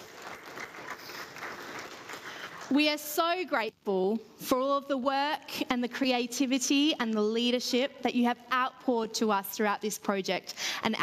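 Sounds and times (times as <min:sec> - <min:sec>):
audience applause for an artist at a project gathering: 0:00.0 - 0:03.0
speech: 0:02.7 - 0:11.0.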